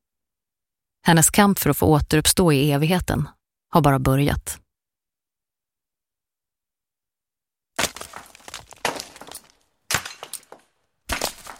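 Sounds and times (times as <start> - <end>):
speech: 1.0 - 4.6
granite rubble crumbling and cracking: 7.8 - 11.5
pickaxes hacking granite stone: 7.8 - 11.5.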